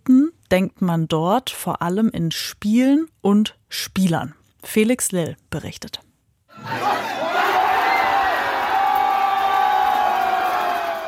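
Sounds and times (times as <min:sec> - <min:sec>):
speech: 0:00.5 - 0:06.9
large crowd of football fans cheering: 0:06.5 - 0:11.0.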